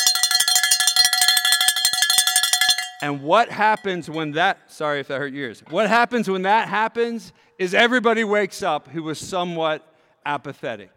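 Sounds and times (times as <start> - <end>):
final-lap bell clanging at a track race: 0.0 - 4.4
speech: 3.0 - 10.9.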